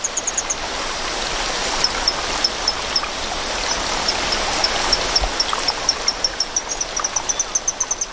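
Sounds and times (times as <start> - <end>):
rushing stream water flowing loudly where small torrent frogs live: 0.0 - 8.1
faint high chirps: 5.0 - 8.1.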